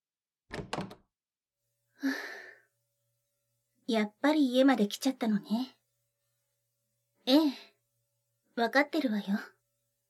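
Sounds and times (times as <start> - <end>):
front door opening clunks: 0.5 - 1.0
speech: 2.0 - 2.3, 3.9 - 5.8, 7.2 - 7.7, 8.6 - 9.6.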